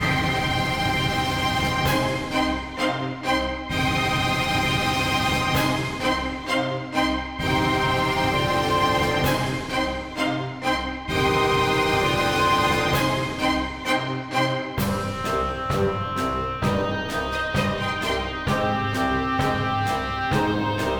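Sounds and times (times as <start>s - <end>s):
orchestra loop: 0.0s - 20.9s.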